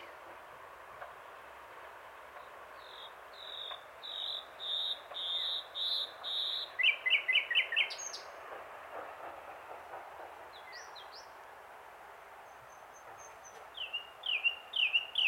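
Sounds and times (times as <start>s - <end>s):
common nightingale Luscinia megarhynchos song: 2.8s - 8.3s, 12.7s - 15.2s.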